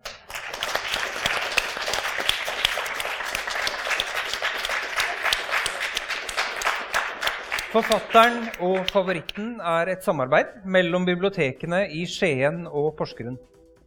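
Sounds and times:
live audience applause in a circus tent: 0.0s - 9.4s
speech: 7.7s - 13.6s.

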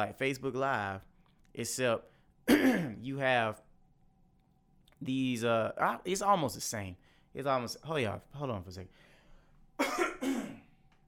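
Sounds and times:
speech: 0.0s - 3.6s, 5.0s - 9.1s
harsh rough throat clearing: 2.5s - 3.0s, 9.8s - 10.7s.

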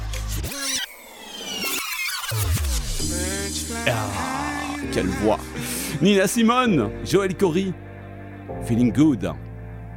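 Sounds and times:
DJ turntable scratching: 0.0s - 4.8s
speech: 5.0s - 7.8s, 8.6s - 9.4s.

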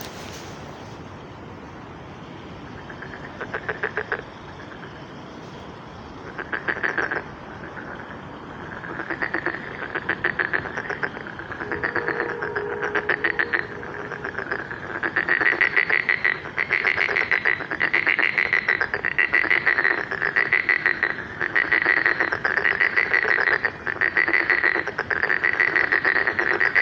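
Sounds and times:
frogs croaking at a pond on a spring evening: 1.5s - 26.8s
low soft hum: 11.4s - 15.8s.

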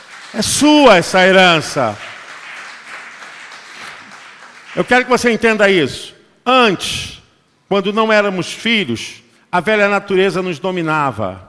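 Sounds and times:
audience applauding: 0.0s - 5.4s
speech: 0.3s - 2.1s, 4.8s - 7.1s, 7.7s - 11.4s.

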